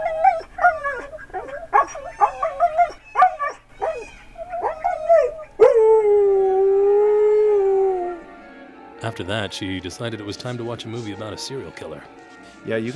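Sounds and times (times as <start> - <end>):
dog yipping and whimpering: 0.0 - 5.9
dog howling: 0.0 - 8.3
speech: 9.2 - 12.9.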